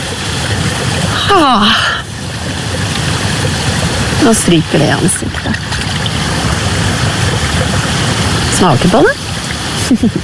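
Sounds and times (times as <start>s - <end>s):
spring water trickling between stones and moss: 0.0s - 10.2s
person exclaiming: 1.2s - 2.0s
speech: 1.3s - 1.9s, 4.2s - 5.7s, 8.6s - 9.3s, 9.9s - 10.2s.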